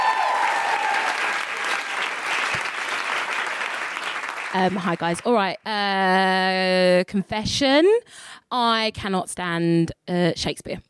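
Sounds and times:
sizable audience applauding: 0:00.0 - 0:05.2
speech: 0:04.5 - 0:10.8.

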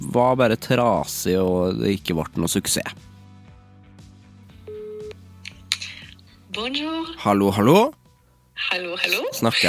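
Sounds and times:
soft musical bed: 0:00.0 - 0:09.6
speech: 0:00.2 - 0:03.2, 0:06.6 - 0:08.0, 0:08.6 - 0:09.6
telephone dialing tone: 0:04.7 - 0:05.1.

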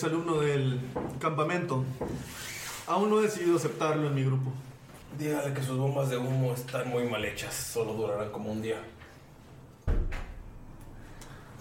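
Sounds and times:
speech: 0:00.0 - 0:09.0
door shutting with a heavy thud: 0:09.8 - 0:10.5.

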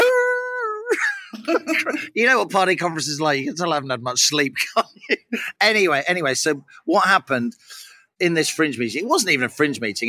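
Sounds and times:
person's voice imitating howling at the moon: 0:00.0 - 0:00.9
speech: 0:00.9 - 0:10.0.

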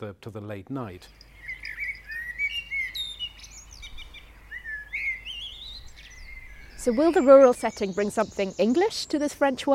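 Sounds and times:
speech: 0:00.0 - 0:01.3, 0:06.8 - 0:09.7
several birds singing and chirping outdoors: 0:01.0 - 0:09.7.

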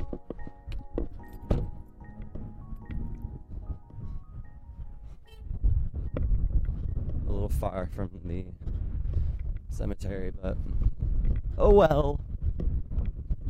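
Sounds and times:
knocks and clicks: 0:00.0 - 0:03.4
outdoor wind buffeting against the microphone: 0:00.0 - 0:13.4
speech: 0:07.5 - 0:08.7, 0:09.8 - 0:10.9, 0:11.6 - 0:12.2.

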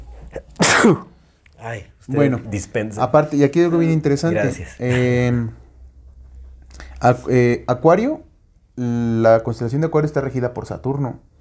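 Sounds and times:
sneeze: 0:00.2 - 0:01.2
speech: 0:00.4 - 0:05.6, 0:07.0 - 0:11.3.

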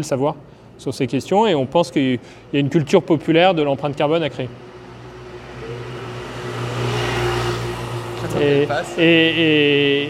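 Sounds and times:
speech: 0:00.0 - 0:04.7, 0:08.3 - 0:10.0
combustion car engine revving in street traffic: 0:04.6 - 0:10.0.

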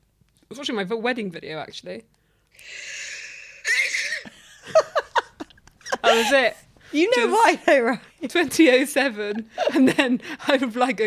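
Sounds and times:
speech: 0:00.5 - 0:02.9, 0:06.1 - 0:11.0
long breathy wheezing inhale: 0:02.3 - 0:03.9
woman sneezing in a played voice note: 0:02.7 - 0:04.4
laughter: 0:04.2 - 0:07.8, 0:09.5 - 0:10.2.

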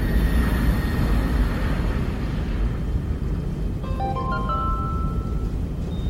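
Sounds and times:
airliner taking off on a New York to Paris flight: 0:00.0 - 0:06.0
brief tones: 0:03.8 - 0:06.0.

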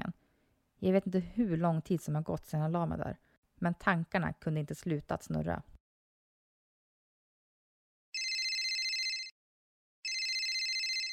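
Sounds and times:
speech: 0:00.8 - 0:05.7
telephone ringing with bright electronic trills: 0:08.2 - 0:09.4, 0:10.0 - 0:11.1.

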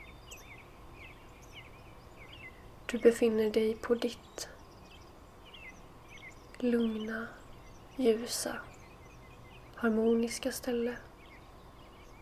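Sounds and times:
faint birds chirping: 0:00.0 - 0:12.2
speech: 0:02.9 - 0:04.6, 0:06.6 - 0:07.4, 0:08.0 - 0:08.7, 0:09.8 - 0:11.1.

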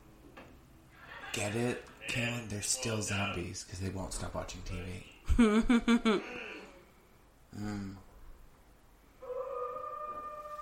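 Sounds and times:
speech: 0:01.3 - 0:06.5, 0:07.6 - 0:08.1
drawn-out wolf howl: 0:09.2 - 0:10.6.

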